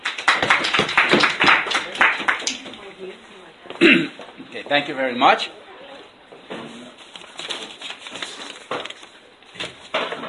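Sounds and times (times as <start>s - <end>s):
audience applause for a guest speaker at a breakfast lecture: 0.0s - 2.6s
speech: 4.7s - 5.6s.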